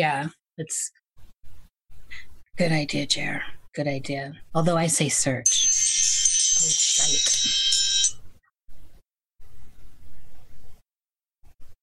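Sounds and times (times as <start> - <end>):
speech: 0.0 - 1.0, 2.6 - 6.1
phone reminder alarm chirping: 5.5 - 8.2.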